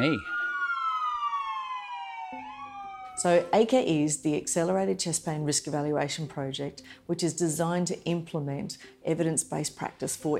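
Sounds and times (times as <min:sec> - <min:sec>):
speech: 0:00.0 - 0:00.3, 0:03.2 - 0:10.3
ambulance siren wailing: 0:00.0 - 0:03.7.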